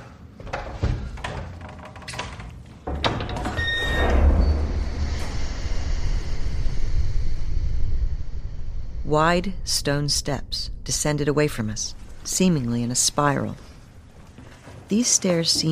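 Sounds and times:
heavy door scraping, clunking and grinding open: 0.5 - 9.0
speech: 9.1 - 13.7, 14.9 - 15.7.

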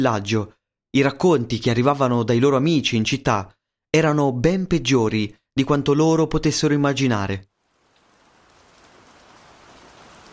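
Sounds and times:
speech: 0.0 - 7.5
steady rain: 7.5 - 10.3.

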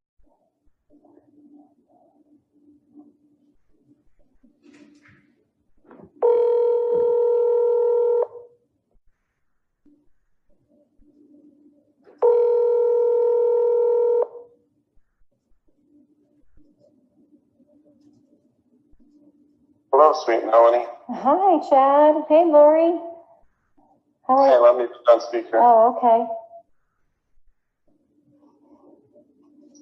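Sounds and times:
faint low hum: 0.2 - 29.7
outgoing phone call ringback tone: 6.2 - 8.5, 12.2 - 14.5
speech: 19.0 - 23.1, 24.3 - 26.4.

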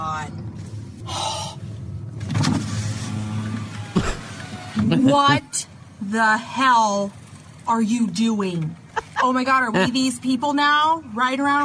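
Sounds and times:
electric car window rolling down with a motor whir: 2.2 - 5.3
speech: 5.1 - 11.6.

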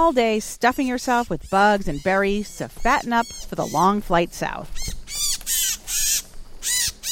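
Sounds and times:
small slate-gray migrating bird caught in a net giving harsh raspy calls: 0.0 - 4.1, 4.7 - 7.1
speech: 0.0 - 5.0.

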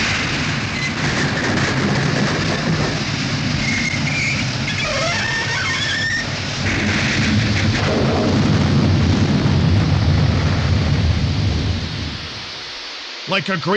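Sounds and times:
mail train derailing on a tight curve and crashing into a ditch: 0.0 - 12.5
heavy rumbling: 0.0 - 13.6
shrill metallic screeches: 3.6 - 6.4
speech: 13.4 - 13.7.

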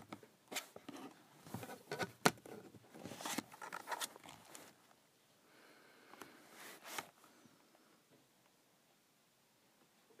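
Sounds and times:
plastic calculator cover sliding and scraping: 0.5 - 4.8, 6.5 - 7.2.

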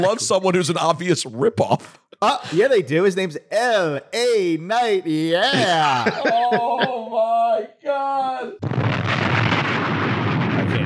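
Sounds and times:
speech: 0.0 - 9.1
laughter: 5.1 - 7.3
bomb explosion sound effect: 8.6 - 10.8.

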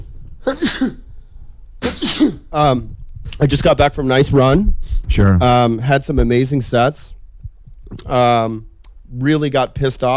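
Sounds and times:
speech: 0.4 - 1.0, 2.2 - 7.1, 7.9 - 10.1
person sneezing: 0.4 - 1.1, 1.8 - 2.5.

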